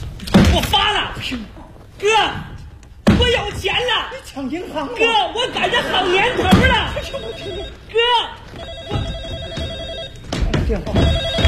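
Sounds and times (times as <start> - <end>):
speech: 0.5 - 2.5, 3.2 - 9.0, 10.7 - 11.4
laughter: 4.6 - 7.8
telephone ringing: 6.8 - 10.3, 11.0 - 11.4.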